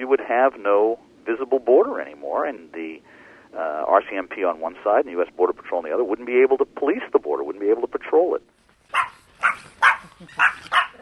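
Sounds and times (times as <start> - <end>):
speech: 0.1 - 9.2, 10.2 - 10.8
Pomeranian show dogs barking in a kennel: 8.9 - 10.9.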